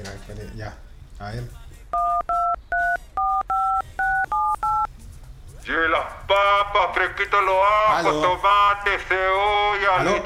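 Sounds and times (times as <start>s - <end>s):
speech: 0.0s - 2.1s, 5.7s - 10.2s
two-tone telephone keypad beeps: 2.0s - 4.9s.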